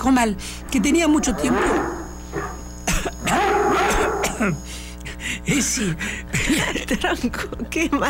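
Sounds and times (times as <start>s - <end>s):
speech: 0.0s - 2.6s, 4.4s - 8.0s
raspy throaty voiced stretch between coughs: 0.3s - 8.0s
person coughing with recurring cough after chikungunya: 2.8s - 4.7s, 5.5s - 6.9s.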